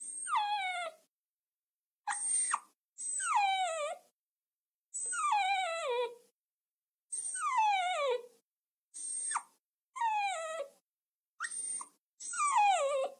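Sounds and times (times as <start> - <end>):
dog whining: 0.2 - 1.0, 2.1 - 4.1, 5.0 - 6.2, 7.2 - 8.3, 9.2 - 10.8, 11.4 - 13.1.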